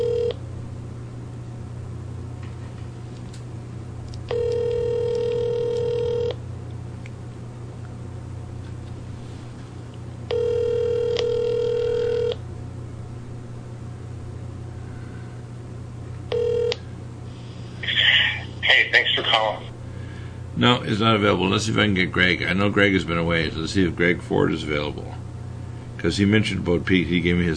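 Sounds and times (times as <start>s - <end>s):
phone line ringback tones while waiting for an answer: 0.0s - 0.4s, 4.3s - 6.4s, 10.3s - 12.4s, 16.3s - 16.8s
steady low hum: 0.0s - 27.5s
speech: 20.6s - 25.2s, 26.0s - 27.5s.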